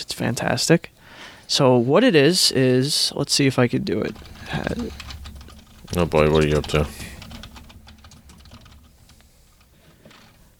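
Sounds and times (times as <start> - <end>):
speech: 0.0 - 5.1, 5.9 - 7.1
rapid typing on a computer keyboard: 3.9 - 10.5.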